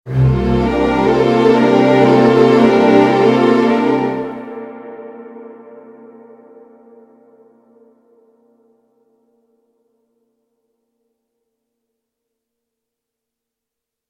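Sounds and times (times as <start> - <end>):
violin instrumental: 0.1 - 4.8.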